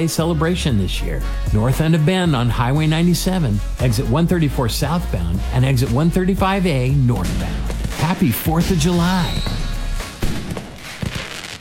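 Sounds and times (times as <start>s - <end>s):
speech: 0.0s - 9.7s
Fourth of July fireworks booming: 7.1s - 11.6s.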